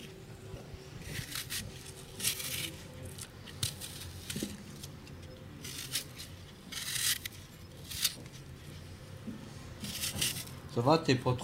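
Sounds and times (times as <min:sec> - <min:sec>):
steady low hum: 0:00.0 - 0:11.0
apples being peeled by hand: 0:01.0 - 0:08.9, 0:09.8 - 0:10.6
speech: 0:10.8 - 0:11.4.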